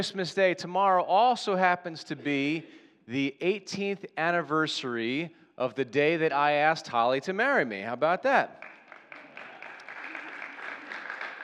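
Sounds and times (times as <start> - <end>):
speech: 0.0 - 8.6
audience applause, many hands clapping: 8.6 - 11.4.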